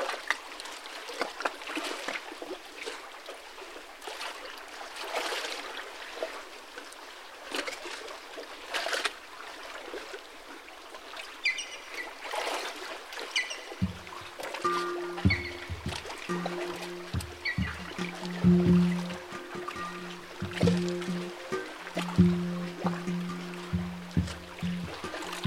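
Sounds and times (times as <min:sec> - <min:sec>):
soft splashes: 0:00.0 - 0:25.4
water lapping and trickling against a jetty on a mountain lake: 0:00.0 - 0:25.4
faint chirps: 0:13.4 - 0:21.6
low pulsing motor hum: 0:13.8 - 0:25.4.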